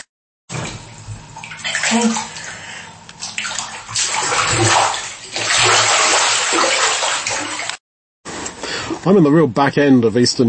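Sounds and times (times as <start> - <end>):
bathwater sloshing and splashing as someone dips down in a filled tub: 0.5 - 7.8
speech: 1.9 - 2.4, 9.0 - 10.4.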